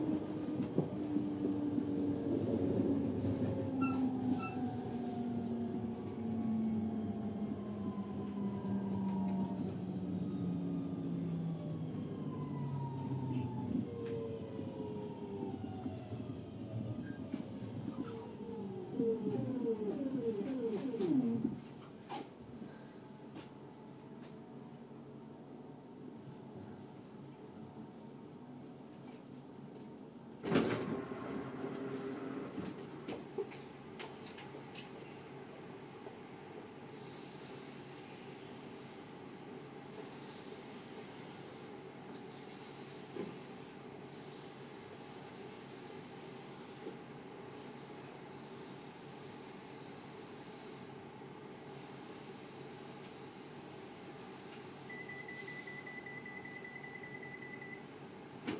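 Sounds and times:
computer-generated sci-fi train: 0.0 - 58.5.

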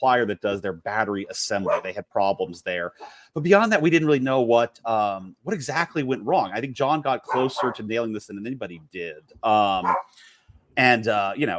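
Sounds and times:
speech: 0.0 - 11.5
dog barking in the background: 1.6 - 1.9, 7.3 - 7.8, 9.8 - 10.1.

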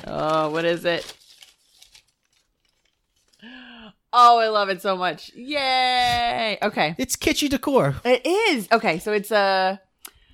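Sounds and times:
speech: 0.0 - 1.2, 4.2 - 9.9
wrapping paper crinkling: 0.0 - 3.5.

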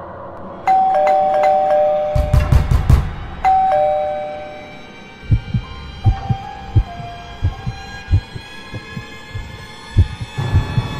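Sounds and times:
electronic doorbell chiming bright tones: 0.7 - 2.5, 3.5 - 4.8
heavy knocks: 2.2 - 3.5, 5.3 - 10.9.

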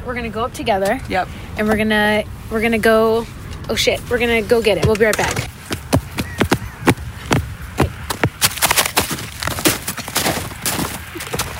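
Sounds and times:
speech: 0.0 - 5.5
rapid footsteps of several people: 4.6 - 11.5.

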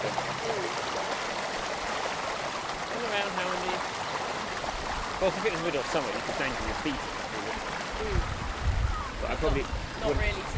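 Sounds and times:
babbling brook water flowing: 0.0 - 10.5
speech: 5.2 - 7.4, 8.0 - 8.4, 9.3 - 10.5.

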